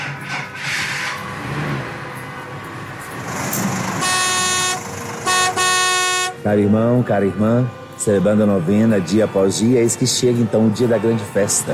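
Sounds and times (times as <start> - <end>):
steady traffic and engine rumble: 0.0 - 11.7
truck horn honking: 3.2 - 6.7
speech: 6.4 - 11.7.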